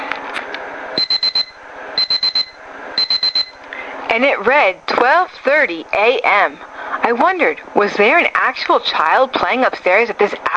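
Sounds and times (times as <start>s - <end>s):
low steady hum: 0.0s - 10.5s
alarm clock beeping: 1.0s - 3.6s
speech: 4.2s - 10.5s.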